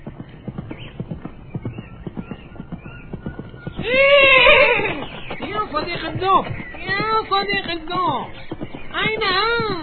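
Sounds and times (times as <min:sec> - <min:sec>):
horse hooves clip-clopping: 0:00.0 - 0:09.8
horse neighing and whinnying: 0:03.8 - 0:06.9
speech: 0:03.9 - 0:04.2, 0:05.7 - 0:09.8.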